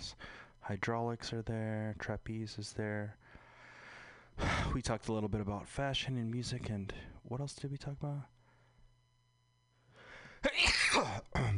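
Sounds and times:
speech: 0.1s - 3.3s, 4.7s - 8.4s
loud sneeze: 10.4s - 11.5s.

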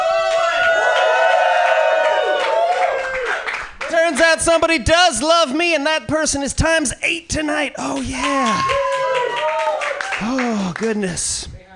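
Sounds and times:
crowd cheering with whoops and yells: 0.0s - 4.1s, 7.9s - 10.8s
scattered clapping: 2.0s - 4.0s, 8.0s - 10.9s
speech: 4.3s - 8.8s, 10.2s - 11.5s.

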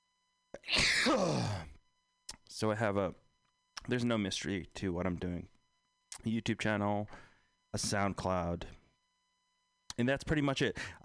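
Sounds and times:
person sneezing: 0.6s - 1.7s
speech: 1.0s - 1.6s, 2.5s - 3.2s, 3.8s - 5.6s, 6.2s - 8.8s, 10.0s - 11.0s.

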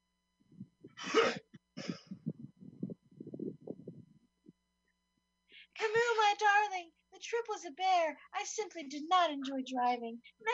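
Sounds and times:
low rough throat-clearing: 0.9s - 2.4s
man coughing: 1.0s - 2.2s
speech: 6.4s - 10.5s.

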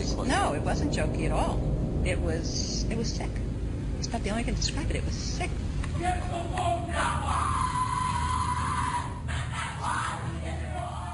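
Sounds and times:
low rumbling background: 0.0s - 11.1s
speech: 0.2s - 3.5s, 4.1s - 7.6s
rowdy group shouting and yelling at a secret society initiation ceremony: 5.9s - 11.1s
chant-like bellowing: 6.0s - 11.1s
screams: 6.0s - 11.1s.

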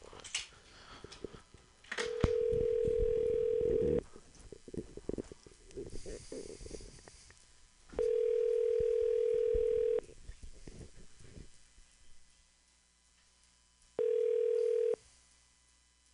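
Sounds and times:
telephone ringback tone on an outgoing call: 2.0s - 4.0s, 8.0s - 10.0s, 14.0s - 15.0s.

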